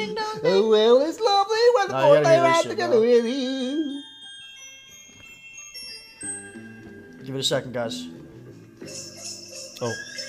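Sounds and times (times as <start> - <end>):
speech: 0.0 - 3.9, 7.3 - 8.2, 8.8 - 9.1, 9.8 - 10.2
song playing: 1.8 - 10.2
horse whinny: 8.9 - 10.2.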